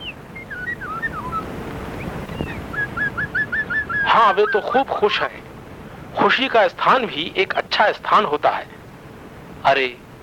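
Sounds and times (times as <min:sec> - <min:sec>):
birds singing in short chirpy whistled notes: 0:00.0 - 0:05.4
speech: 0:04.2 - 0:05.4, 0:06.2 - 0:08.8, 0:09.6 - 0:10.0.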